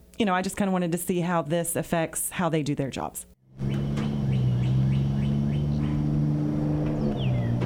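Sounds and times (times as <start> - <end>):
speech: 0.2 - 3.8
birds chirping: 3.6 - 7.6
car engines idling as cars pull up behind a school: 3.6 - 7.6.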